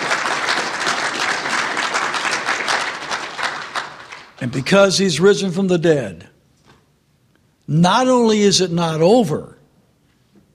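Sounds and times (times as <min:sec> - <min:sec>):
audience applauding: 0:00.0 - 0:04.4
speech: 0:04.4 - 0:06.3, 0:07.7 - 0:09.6.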